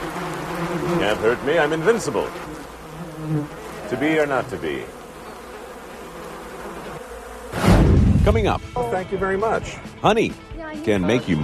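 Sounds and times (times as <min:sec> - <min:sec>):
bees buzzing: 0:00.0 - 0:08.3
speech: 0:00.9 - 0:02.6, 0:03.2 - 0:05.0, 0:08.2 - 0:11.4.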